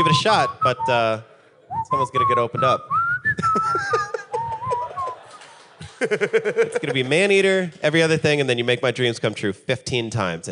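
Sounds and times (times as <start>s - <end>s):
speech: 0.0s - 4.2s, 6.0s - 10.5s
person whistling a short wavering tune: 0.0s - 5.3s
chuckles: 3.4s - 7.0s.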